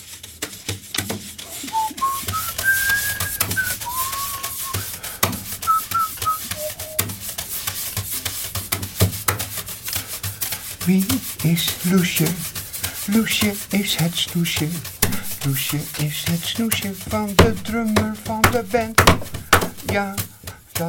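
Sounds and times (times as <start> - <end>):
person whistling a short wandering melody: 1.6 - 7.2
speech: 10.9 - 12.5, 13.1 - 20.8.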